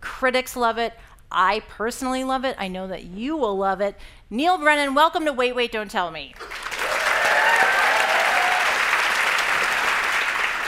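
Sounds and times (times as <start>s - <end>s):
speech: 0.2s - 6.7s
studio audience applauding: 6.4s - 10.6s.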